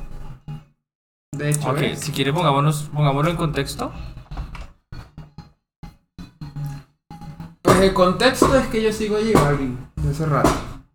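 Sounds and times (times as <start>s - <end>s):
speech: 1.4s - 4.2s, 7.8s - 10.7s
chair creaking and knocking: 7.7s - 10.8s.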